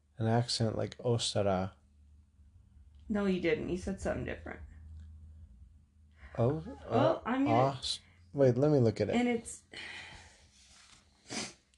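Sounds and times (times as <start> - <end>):
speech: 0.2 - 1.8, 3.1 - 4.7, 6.4 - 10.1
faint breathing: 6.1 - 6.8, 9.7 - 11.7
short breathy sniff through the nose: 11.2 - 11.7.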